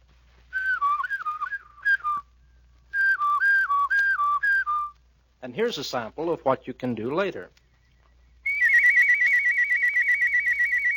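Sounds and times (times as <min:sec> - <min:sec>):
person mouth whistling a clear steady melody: 0:00.5 - 0:02.3, 0:02.9 - 0:05.0, 0:08.4 - 0:10.9
speech: 0:05.4 - 0:07.6.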